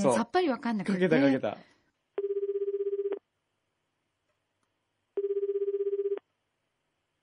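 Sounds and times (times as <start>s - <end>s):
speech: 0.0s - 1.7s
telephone ringback tone during outgoing call: 2.2s - 3.2s, 5.2s - 6.2s.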